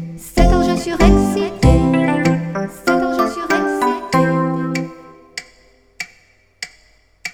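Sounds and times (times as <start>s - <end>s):
brief musical tone: 0.4s - 5.4s
alarm clock ticking: 0.4s - 5.7s.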